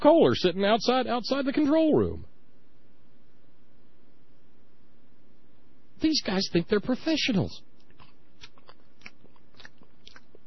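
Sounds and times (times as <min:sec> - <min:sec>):
speech: 0:00.0 - 0:02.3, 0:06.0 - 0:07.7
men chewing loudly near the microphone in a radio control room: 0:07.8 - 0:10.4.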